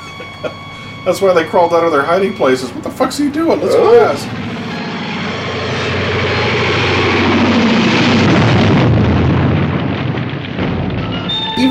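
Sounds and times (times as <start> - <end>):
descending plane engine whine: 0.0 - 11.3
speech: 0.2 - 4.6
plane crashing into gas station and exploding: 6.7 - 11.4.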